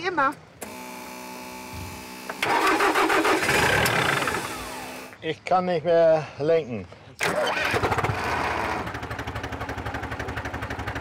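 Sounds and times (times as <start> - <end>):
speech: 0.0 - 0.5, 5.2 - 7.8
tractor engine starting up: 2.3 - 5.1, 7.2 - 10.9.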